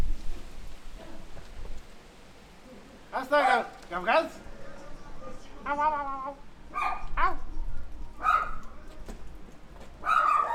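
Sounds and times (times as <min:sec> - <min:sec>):
speech: 0:03.2 - 0:04.5, 0:05.6 - 0:07.4
dog barking: 0:03.3 - 0:03.8, 0:06.7 - 0:07.5, 0:08.2 - 0:08.8, 0:10.0 - 0:10.5
dog whining yips: 0:06.7 - 0:07.5, 0:08.2 - 0:08.6, 0:10.0 - 0:10.5.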